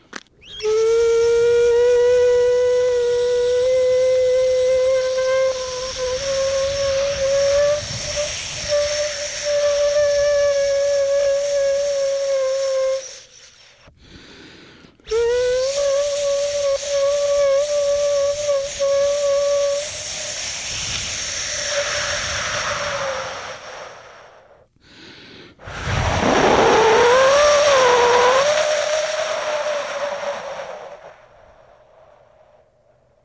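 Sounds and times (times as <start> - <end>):
air-blown instrument with plastic-covered openings sounding a reedy tone: 0.4 - 13.9, 15.0 - 24.7, 25.6 - 31.6.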